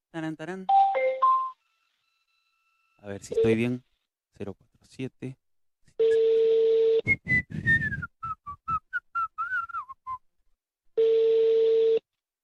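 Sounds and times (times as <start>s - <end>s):
speech: 0.1s - 1.0s, 3.0s - 5.4s, 7.0s - 7.9s
telephone call ringback tone going unanswered: 6.0s - 7.0s, 11.0s - 12.0s
lively whistled melody: 7.1s - 10.3s.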